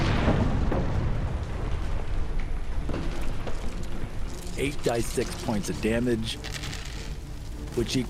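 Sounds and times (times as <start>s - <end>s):
deep roaring fireball explosion: 0.0s - 3.5s
speech: 4.6s - 6.6s, 7.8s - 8.0s.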